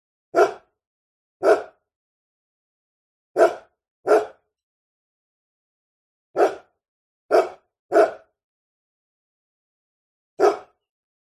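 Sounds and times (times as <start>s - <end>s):
medium-sized dog barking: 0.3s - 0.7s, 1.4s - 1.8s, 3.4s - 4.5s, 6.4s - 6.7s, 7.3s - 8.4s, 10.4s - 10.8s.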